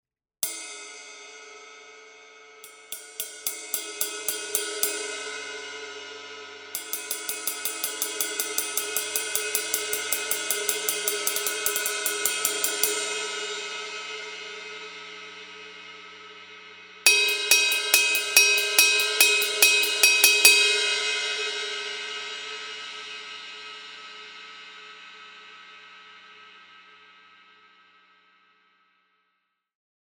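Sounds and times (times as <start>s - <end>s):
power ride cymbal pattern: 2.6s - 24.3s.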